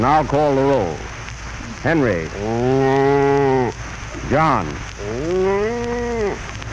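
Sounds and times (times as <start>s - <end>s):
speech: 0.0s - 1.1s, 1.8s - 5.6s
constant hissing like light rain: 0.0s - 6.7s
cow mooing: 2.4s - 3.8s, 5.0s - 6.4s.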